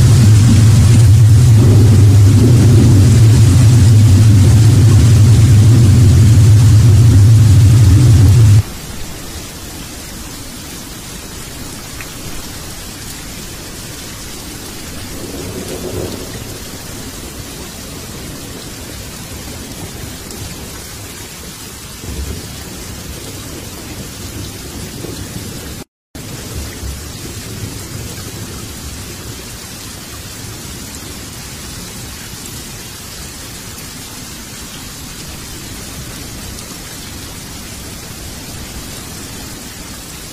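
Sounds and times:
faint low roll: 0:00.0 - 0:08.6
loud deep rumble: 0:00.0 - 0:08.6
heavy rain: 0:00.0 - 0:40.3.

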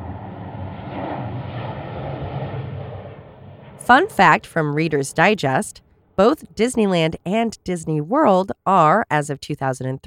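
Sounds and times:
airplane passing overhead: 0:00.0 - 0:06.7
speech: 0:03.9 - 0:10.0.

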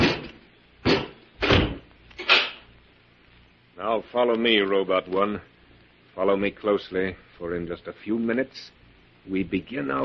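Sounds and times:
door slamming shut: 0:00.0 - 0:02.6
speech: 0:03.8 - 0:05.5, 0:06.2 - 0:10.0.

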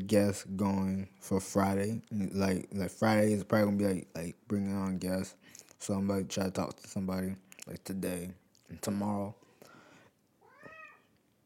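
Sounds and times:
speech: 0:00.1 - 0:09.4
cat meowing: 0:10.4 - 0:11.1.

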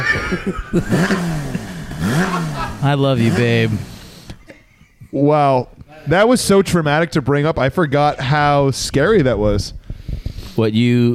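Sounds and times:
laughter: 0:00.0 - 0:05.4
speech: 0:00.1 - 0:03.9, 0:05.1 - 0:09.8, 0:10.6 - 0:11.1
car engine revving: 0:00.2 - 0:04.5.

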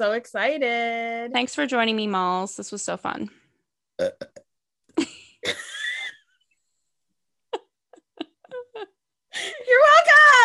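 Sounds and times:
speech: 0:00.0 - 0:03.4, 0:04.0 - 0:04.4, 0:05.0 - 0:05.8
loud burp: 0:04.0 - 0:04.5
short sharp throaty bursts and gulps: 0:04.0 - 0:04.6.

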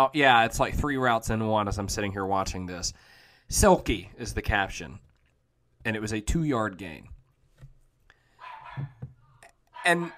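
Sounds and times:
speech: 0:00.0 - 0:05.1, 0:05.8 - 0:07.1, 0:08.8 - 0:09.0, 0:09.8 - 0:10.1
dog barking: 0:08.4 - 0:09.0, 0:09.7 - 0:10.1.

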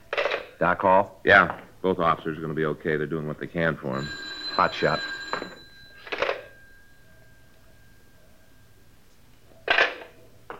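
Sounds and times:
speech: 0:00.6 - 0:05.6
telephone ringing: 0:03.6 - 0:10.2.

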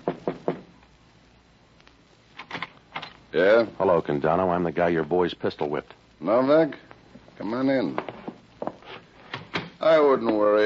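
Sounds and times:
sharp knocks on an office door: 0:00.0 - 0:00.7
speech: 0:03.3 - 0:08.1, 0:09.9 - 0:10.6.

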